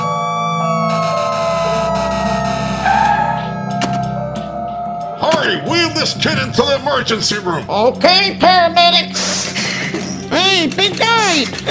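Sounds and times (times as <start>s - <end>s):
ambulance siren wailing: 0.0s - 7.1s
low engine rumble: 1.1s - 8.7s
speech: 6.0s - 9.5s, 10.5s - 11.7s.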